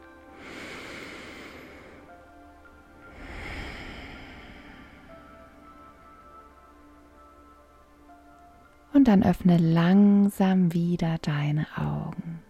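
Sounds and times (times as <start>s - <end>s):
deep breath drawn into the belly during a guided relaxation exercise: 0.3s - 2.2s, 3.0s - 6.1s
speech: 9.0s - 12.3s.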